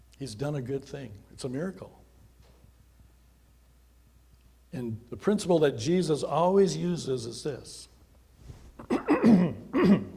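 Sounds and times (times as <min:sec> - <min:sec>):
speech: 0:00.2 - 0:02.0, 0:04.7 - 0:07.9
person clearing throat: 0:08.8 - 0:10.1
person coughing: 0:08.8 - 0:10.1.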